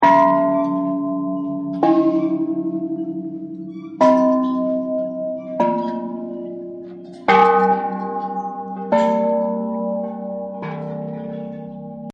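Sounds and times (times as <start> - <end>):
Buddhist bells ringing: 0.0 - 12.1.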